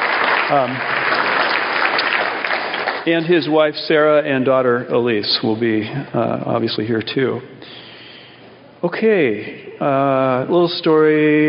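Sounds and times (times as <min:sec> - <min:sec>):
audience applause: 0:00.0 - 0:03.6
speech: 0:00.5 - 0:01.0, 0:03.1 - 0:07.8, 0:08.8 - 0:11.4.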